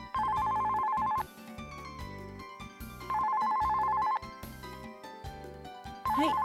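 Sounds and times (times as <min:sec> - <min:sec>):
soft music: 0:00.0 - 0:06.4
telephone ringing with an electronic trill: 0:00.1 - 0:01.3, 0:03.0 - 0:04.2, 0:06.1 - 0:06.4.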